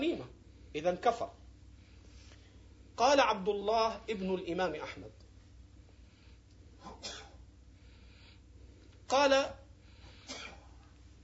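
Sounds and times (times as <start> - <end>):
speech: 0.7 - 1.4, 3.0 - 5.2, 9.1 - 9.6
person sneezing: 6.8 - 7.4, 10.0 - 10.8.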